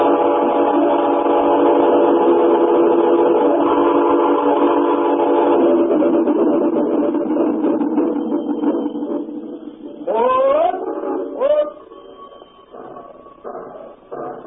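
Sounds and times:
train whistle: 0:00.0 - 0:06.0, 0:10.0 - 0:14.4
train pulling out of Midford rumbling along the rails: 0:00.0 - 0:14.4.

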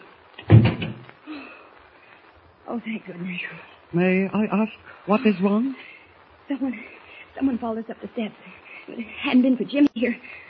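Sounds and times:
door swung shut with a solid thud: 0:00.4 - 0:01.0
speech: 0:02.7 - 0:05.9, 0:06.5 - 0:10.4.

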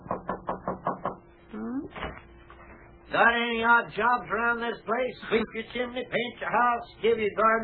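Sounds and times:
firm knocks on a wooden back door: 0:00.0 - 0:01.2
speech: 0:03.1 - 0:07.6.

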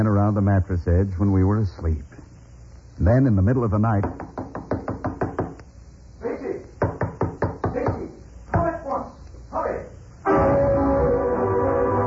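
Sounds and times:
speech: 0:00.0 - 0:02.2, 0:03.0 - 0:04.4
loud rapid knocking on a door at night: 0:04.0 - 0:05.6, 0:06.8 - 0:08.7
loud sustained call: 0:10.2 - 0:12.0.

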